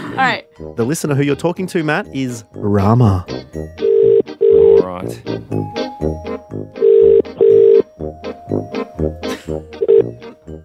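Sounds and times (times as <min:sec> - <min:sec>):
speech: 0:00.2 - 0:03.9, 0:04.9 - 0:06.2
outgoing phone call double ring tone: 0:03.8 - 0:04.8, 0:06.8 - 0:07.9, 0:09.8 - 0:10.2.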